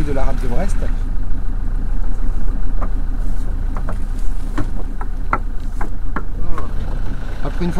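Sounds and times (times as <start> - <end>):
engine of an old traditional sailing boat idling: 0.0 - 7.7
speech: 0.1 - 1.3, 7.6 - 7.7
sharp clicks and knocks: 3.7 - 6.7.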